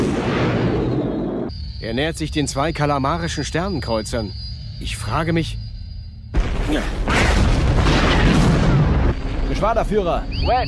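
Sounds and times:
freighter spaceship explosion boom: 0:00.0 - 0:01.5, 0:06.3 - 0:09.5
speech: 0:01.8 - 0:05.6, 0:06.7 - 0:07.4, 0:09.6 - 0:10.6.

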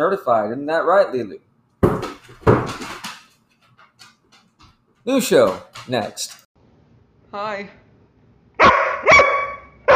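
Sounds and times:
speech: 0:00.0 - 0:02.9, 0:05.0 - 0:06.4, 0:07.3 - 0:07.8
dog barking loudly: 0:08.6 - 0:09.9.

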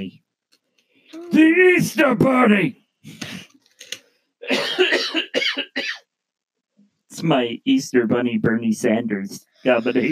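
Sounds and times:
speech: 0:01.1 - 0:03.2, 0:07.2 - 0:10.1
person coughing: 0:04.4 - 0:06.1.

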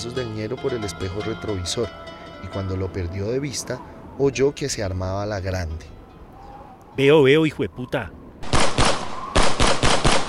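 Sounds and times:
speech: 0:00.0 - 0:06.0, 0:07.0 - 0:08.2
loud sharp gunshots: 0:08.4 - 0:10.2.

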